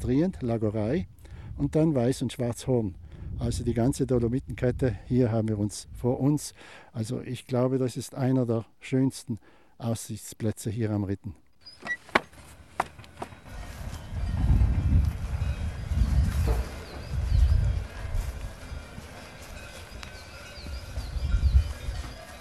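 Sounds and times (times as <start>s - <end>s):
speech: 0.0s - 12.0s
low rumbling movement of cattle: 11.6s - 22.3s
cowbells on cows clanking outdoors on the Ritten near a farm: 13.4s - 22.3s.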